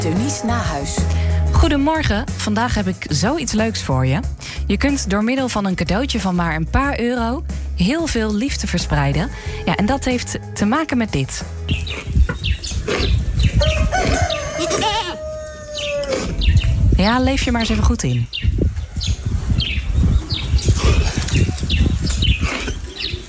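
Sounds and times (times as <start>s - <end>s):
speech: 0.0s - 15.2s, 17.0s - 19.2s
hens clucking: 8.8s - 16.7s
small birds chirping: 10.7s - 23.2s
rooster crowing in a farmyard: 13.6s - 16.4s
goats bleating: 14.0s - 16.1s.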